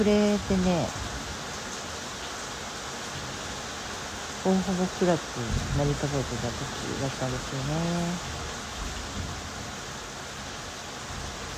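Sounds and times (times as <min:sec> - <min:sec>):
speech: 0:00.0 - 0:01.0, 0:04.4 - 0:08.4
dense rain from a thunderstorm: 0:00.0 - 0:11.5.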